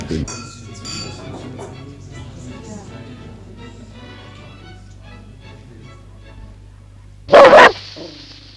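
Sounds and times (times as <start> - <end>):
low quiet talk: 1.2 - 8.5
dog barking: 7.3 - 8.2.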